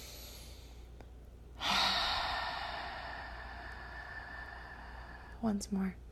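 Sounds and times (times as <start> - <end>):
slow deep breath during a guided meditation: 0.0 - 1.0, 1.6 - 5.4
speech: 5.4 - 6.0.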